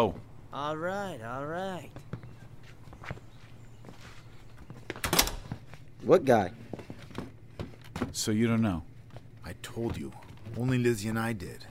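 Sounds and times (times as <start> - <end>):
speech: 0.0 - 2.1, 6.0 - 6.8, 8.1 - 11.6
soft footsteps shuffling across a room: 1.6 - 10.9.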